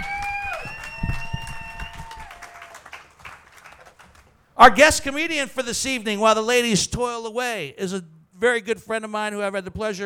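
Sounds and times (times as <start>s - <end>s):
loud sustained whistle: 0.0s - 2.4s
audience cheering: 0.0s - 3.9s
audience clapping: 0.0s - 4.4s
speech: 4.6s - 10.0s.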